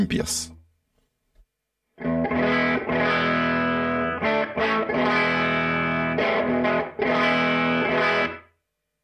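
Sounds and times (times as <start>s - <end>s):
speech: 0.0s - 0.6s
distorted electric guitar chords through amp-modelling pedal emulating a Fender Tweed amp: 2.0s - 8.6s.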